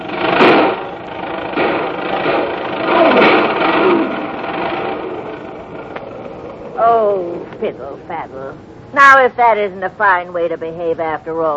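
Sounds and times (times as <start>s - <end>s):
old car engine snorting and backfiring under hard throttle: 0.0s - 7.3s
speech: 7.6s - 11.5s.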